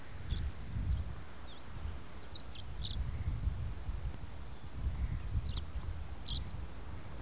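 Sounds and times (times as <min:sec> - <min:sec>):
tree swallow: 0:00.0 - 0:07.2.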